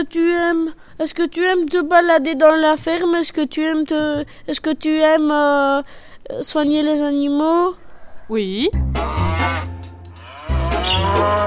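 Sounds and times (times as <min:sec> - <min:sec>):
speech: 0:00.0 - 0:09.7
cows mooing on a farm: 0:09.0 - 0:11.4.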